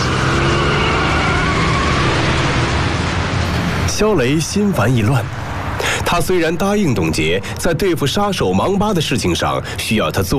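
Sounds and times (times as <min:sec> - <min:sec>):
car engine roaring as the driver floors the accelerator: 0:00.0 - 0:08.4
speech: 0:04.0 - 0:05.4, 0:06.1 - 0:10.3.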